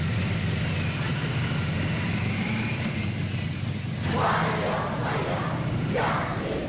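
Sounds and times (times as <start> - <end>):
low vehicle rumble: 0.0 - 6.6.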